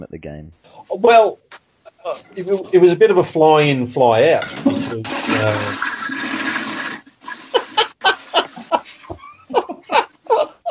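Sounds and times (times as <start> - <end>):
speech: 0.0 - 5.9
toilet flushing: 4.2 - 8.8
laughter: 7.3 - 10.6.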